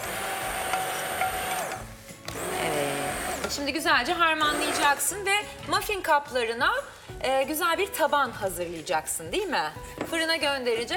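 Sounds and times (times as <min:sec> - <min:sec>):
blender whirring while pureeing soup: 0:00.0 - 0:03.6, 0:04.5 - 0:05.0
speech: 0:03.6 - 0:10.9.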